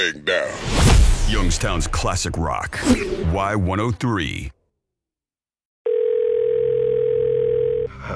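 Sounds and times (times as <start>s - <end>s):
speech: 0.0s - 4.6s
telephone dial tone before a call: 5.9s - 7.9s.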